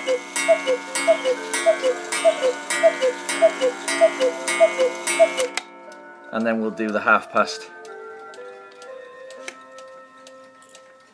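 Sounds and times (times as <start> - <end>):
large cuckoo clock striking with two-note cuckoo calls: 0.0 - 5.7
speech: 0.1 - 5.7, 6.3 - 7.8.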